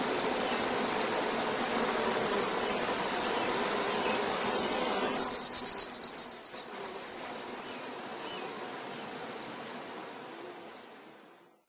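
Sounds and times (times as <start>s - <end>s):
faint background hiss: 0.0s - 11.6s
yellowhammer singing a rapid series of high notes: 5.1s - 7.2s.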